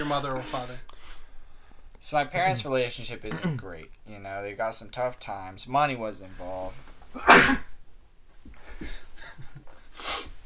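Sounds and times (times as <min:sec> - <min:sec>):
speech: 0:00.1 - 0:00.9, 0:02.0 - 0:07.7
person sneezing: 0:07.2 - 0:07.8.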